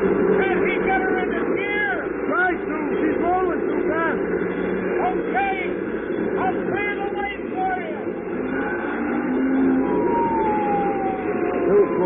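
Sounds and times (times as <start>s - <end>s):
crowd-like hubbub: 0.0s - 12.0s
police car sirens wailing and yelping: 0.0s - 12.0s
traffic rumble: 0.0s - 12.0s.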